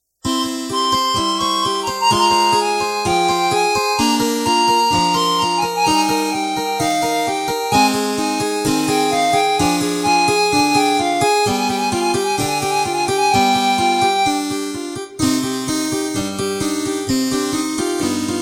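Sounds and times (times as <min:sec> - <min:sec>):
harpsichord backing track of a children's song: 0:00.3 - 0:18.3.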